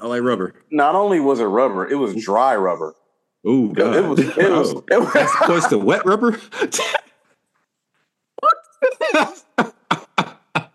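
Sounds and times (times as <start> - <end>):
speech: 0.0 - 7.1, 9.0 - 9.4
laughter: 4.0 - 7.2, 8.9 - 10.7
person gagging: 8.9 - 10.7
sharp hacking coughs after swallowing something: 9.2 - 10.7.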